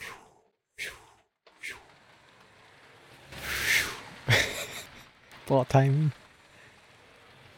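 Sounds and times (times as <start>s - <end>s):
car passing on nearby road: 0.0s - 7.5s
laughter: 4.2s - 5.2s
speech: 5.5s - 6.2s.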